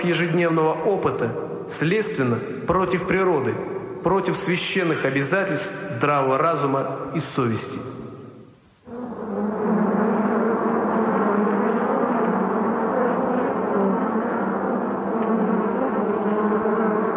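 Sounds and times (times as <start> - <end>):
speech: 0.0 - 7.9
flies buzzing: 8.8 - 17.1.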